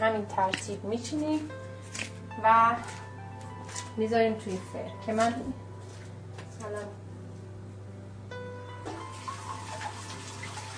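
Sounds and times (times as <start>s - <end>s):
steady low hum: 0.0s - 8.8s
speech: 0.1s - 3.0s, 3.7s - 5.6s, 6.6s - 7.0s
tap water running while washing hands: 8.8s - 10.7s.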